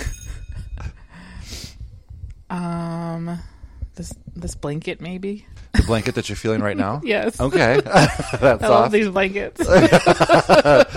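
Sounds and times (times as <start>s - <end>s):
bell ringing: 0.0s - 1.2s
speech: 3.4s - 10.9s
laughter: 5.8s - 10.9s.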